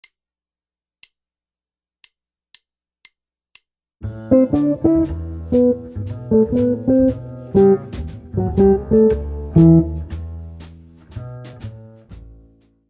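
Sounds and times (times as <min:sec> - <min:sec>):
jazz guitar licks: 0:04.0 - 0:12.4.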